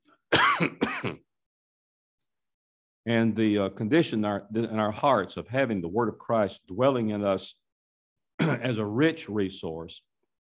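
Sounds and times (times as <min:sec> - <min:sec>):
person clearing throat while speaking: 0:00.3 - 0:01.3, 0:08.4 - 0:08.7
speech: 0:00.6 - 0:01.2, 0:03.1 - 0:07.6, 0:08.5 - 0:10.1.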